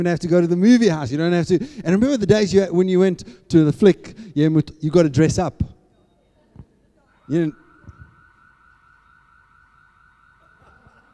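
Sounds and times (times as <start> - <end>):
speech: 0.0 - 5.7, 7.3 - 7.6
steady piercing electronic alarm tone: 7.1 - 11.1.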